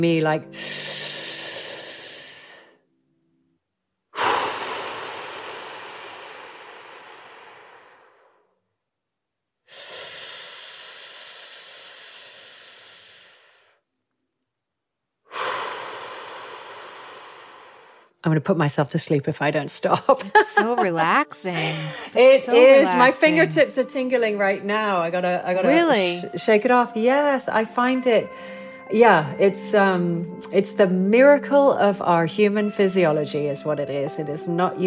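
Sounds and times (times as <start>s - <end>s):
speech: 0.0s - 1.1s, 18.2s - 34.8s
person deliberately breathing long slow deep inhales and exhales: 4.2s - 8.6s, 9.7s - 13.9s, 15.3s - 18.2s
laughter: 20.0s - 23.6s.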